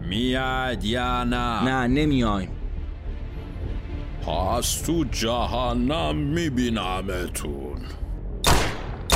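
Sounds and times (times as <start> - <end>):
speech: 0.1 - 2.6, 4.3 - 8.0
gunshots fired at a wall: 8.4 - 9.1.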